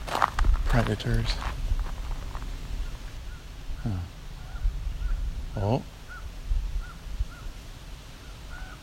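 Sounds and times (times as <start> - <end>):
low wind rumble: 0.0 - 8.8
speech: 0.8 - 1.5, 3.8 - 4.1, 5.6 - 5.9
raven calling: 2.7 - 7.6, 8.2 - 8.8.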